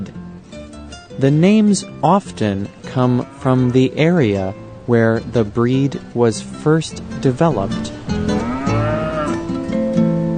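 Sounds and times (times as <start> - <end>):
speech: 1.2 - 8.0
cow mooing: 3.0 - 4.0, 8.2 - 9.5.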